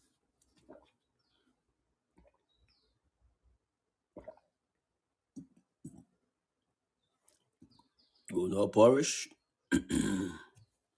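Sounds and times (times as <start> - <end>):
speech: 8.4 - 10.0
person clearing throat: 9.7 - 10.6.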